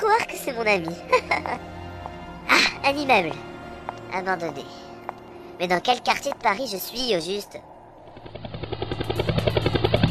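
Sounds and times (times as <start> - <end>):
speech: 0.2 - 1.8, 2.8 - 3.5, 4.1 - 4.8, 5.6 - 7.7
helicopter over a Paris neighborhood chopping: 8.1 - 10.1.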